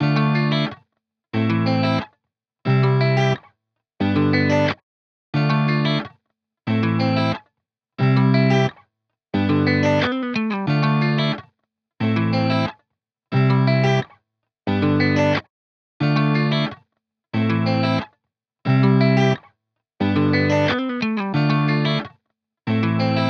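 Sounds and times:
guitar playing A minor chords loop: 0.0s - 0.8s, 1.4s - 2.1s, 2.7s - 3.4s, 4.0s - 4.8s, 5.4s - 6.1s, 6.7s - 7.4s, 8.0s - 8.8s, 9.4s - 11.4s, 12.0s - 14.1s, 14.7s - 16.8s, 17.4s - 18.1s, 18.7s - 22.1s, 22.7s - 23.2s.

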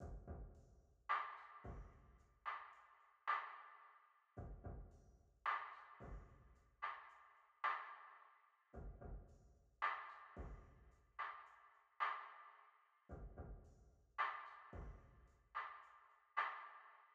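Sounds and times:
drums in D sharp minor: 0.0s - 3.6s, 4.4s - 7.9s, 8.8s - 12.4s, 13.1s - 15.8s.

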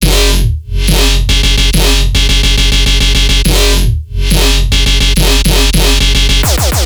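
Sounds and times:
riddim bass loop in F sharp at 140 BPM: 0.0s - 6.8s.

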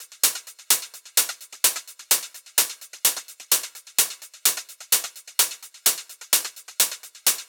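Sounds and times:
melodic techno drum loop: 0.0s - 7.4s.

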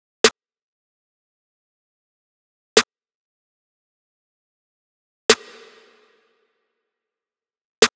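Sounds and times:
snare drum loop: 5.3s - 6.2s.

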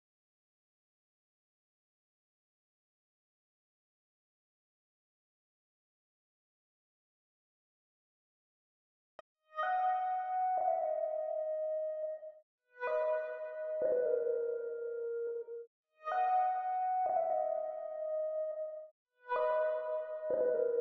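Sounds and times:
lead synth melody in G sharp minor at 148 BPM: 9.6s - 20.8s.

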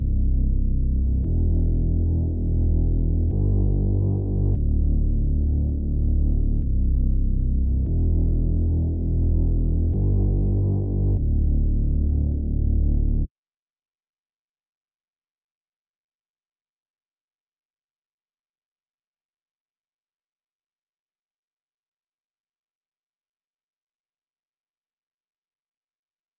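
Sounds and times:
bass loop in E minor at 145 BPM: 0.0s - 13.3s.

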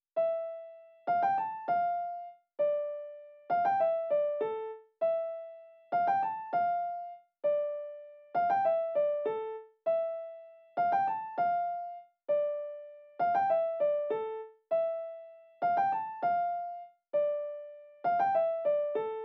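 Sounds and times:
West Coast piano melody loop in A minor: 0.2s - 19.2s.

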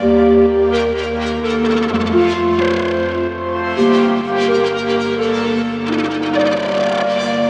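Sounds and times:
melodic techno loop in G minor: 0.7s - 7.4s.

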